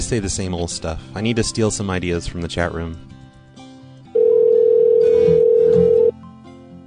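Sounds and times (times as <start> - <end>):
speech: 0.1 - 3.2
ringback tone from an outgoing phone call: 4.2 - 6.1.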